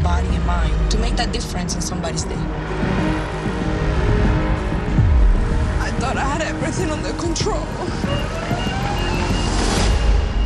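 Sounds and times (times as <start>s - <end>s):
dense city traffic rumbling: 0.0s - 10.4s
speech: 1.2s - 3.0s, 6.6s - 8.8s
faint emergency vehicle siren wailing in city traffic: 7.7s - 10.4s.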